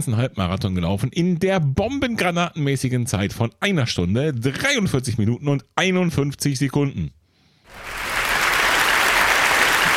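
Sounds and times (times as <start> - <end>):
speech: 0.0 - 7.8
dense sustained crowd applause: 7.7 - 9.9.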